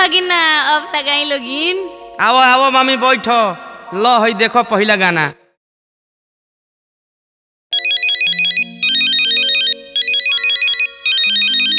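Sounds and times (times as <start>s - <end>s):
speech: 0.1s - 5.4s
phone ringtone with bright trilling tones over melodic backing: 7.7s - 11.7s.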